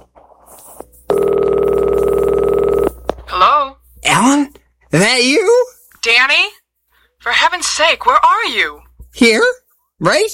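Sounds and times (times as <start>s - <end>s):
telephone line ringing tone after an operator connects a call: 1.1s - 3.0s
speech: 4.9s - 6.6s, 7.2s - 10.3s.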